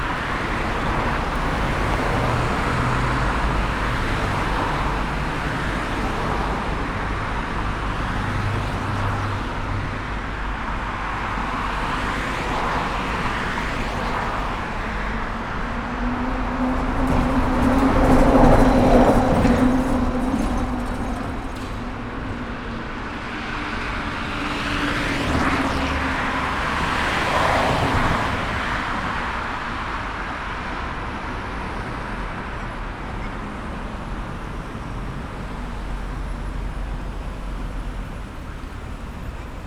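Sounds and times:
trolleybus outside the Nepstadion on Dozsa Gyorgy ut: 0.0 - 39.6.

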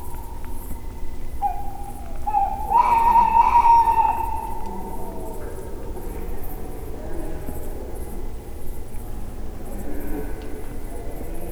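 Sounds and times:
tawny owl calling in nature: 0.0 - 5.7.

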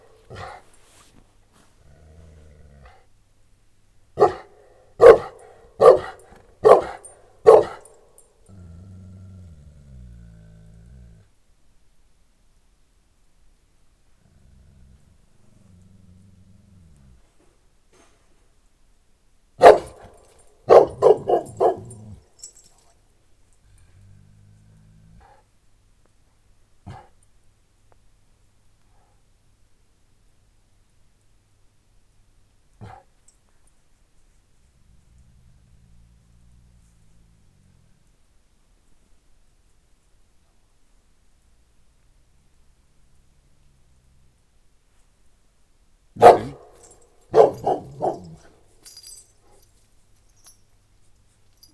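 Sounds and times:
St Bernard and Moscow Watchdog mix dog at a farmyard in Eger: 0.0 - 3.0, 4.2 - 8.8, 19.6 - 24.0, 26.9 - 27.2, 32.8 - 33.7, 46.2 - 51.7.

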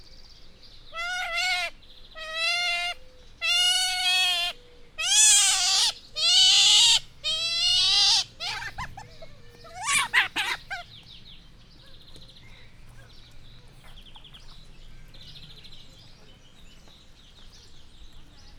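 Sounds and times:
Asian small-clawed otter begging for food in a zoo: 1.0 - 10.9.

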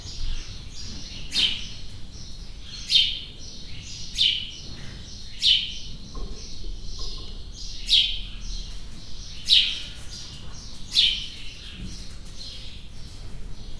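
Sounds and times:
house sparrows in a stable in Hortobágy National Park: 0.0 - 13.7.

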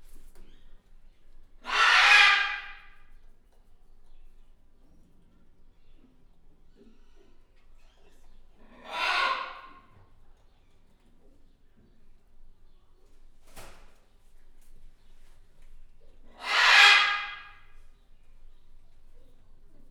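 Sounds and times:
green-winged macaw screeching in a zoo: 1.6 - 2.8, 8.8 - 9.7, 16.4 - 17.5.

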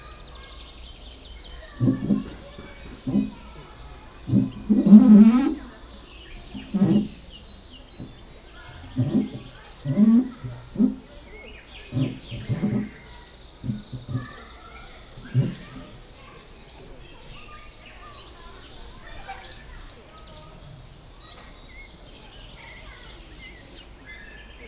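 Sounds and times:
white-handed gibbon moving its nose pressed against plexiglass in a zoo: 0.1 - 16.8.

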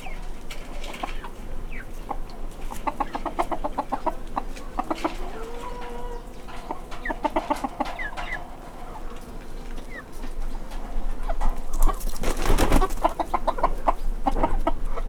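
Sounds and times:
Hungarian hen clucking in a farmyard: 0.0 - 15.0
Hungarian hen flapping wings in a farmyard: 11.6 - 13.6.

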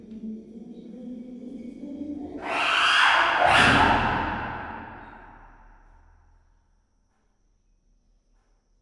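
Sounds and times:
angry chimpanzee at Gyor zoo: 2.4 - 5.3.

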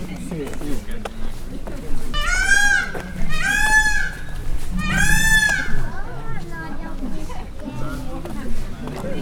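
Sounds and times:
peacock at a zoo in Pecs: 2.2 - 6.4.

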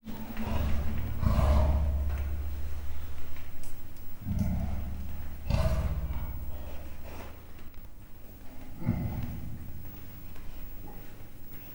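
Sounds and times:
captive leopard growling: 0.1 - 3.1, 4.2 - 7.4, 8.6 - 10.1.

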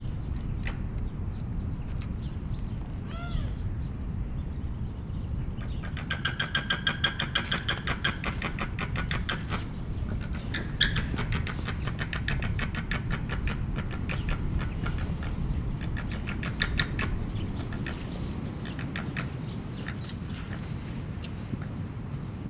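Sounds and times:
windy weather in Hortobágy National Park: 0.0 - 22.4
white-tailed eagle calling in Hortobágy National Park: 2.4 - 4.3, 4.9 - 20.6.

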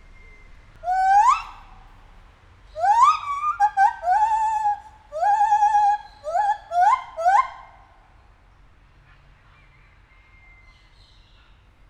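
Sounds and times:
captive white-handed gibbon hooting call in a zoo: 0.8 - 1.8, 2.8 - 7.9.

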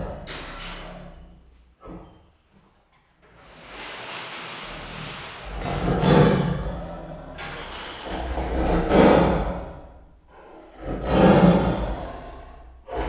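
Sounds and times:
captive Siberian tiger roaring at a zoo: 4.5 - 13.0.

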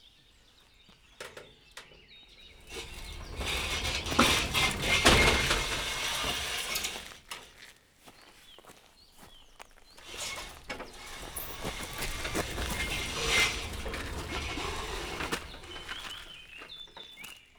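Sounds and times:
rail-running entrance gate of a waterworks opening and closing: 2.4 - 7.6, 10.0 - 17.3.

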